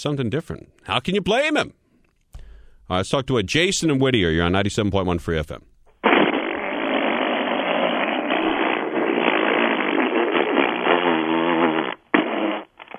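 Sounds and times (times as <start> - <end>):
speech: 0.0 - 1.8, 2.9 - 5.7
long rumbling fart: 6.0 - 12.9.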